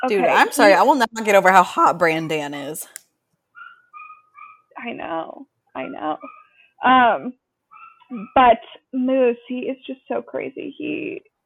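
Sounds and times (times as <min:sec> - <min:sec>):
speech: 0:00.0 - 0:03.0, 0:04.8 - 0:07.4, 0:08.1 - 0:11.3
dog whining after waking from sleep: 0:03.6 - 0:04.7, 0:05.8 - 0:06.6, 0:07.7 - 0:08.6.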